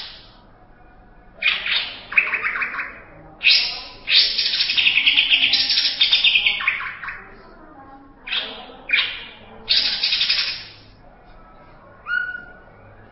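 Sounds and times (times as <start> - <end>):
Greater green leafbird singing harsh chattering phrases: 1.4 - 7.4, 8.2 - 10.9.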